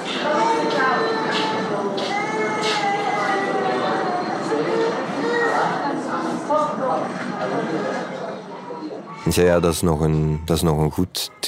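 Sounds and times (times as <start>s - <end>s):
busy noisy room background: 0.0s - 11.4s
several babies crying and wailing in a hospital: 0.3s - 5.9s
speech: 9.3s - 11.4s.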